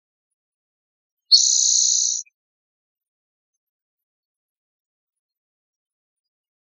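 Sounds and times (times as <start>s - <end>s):
spotted towhee buzz call in northwestern California: 1.3s - 2.2s.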